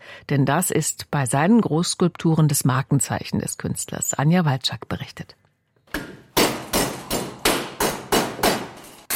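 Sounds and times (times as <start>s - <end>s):
speech: 0.2s - 5.4s
hammering on metal in a metal sculptor's small workshop: 6.3s - 9.0s.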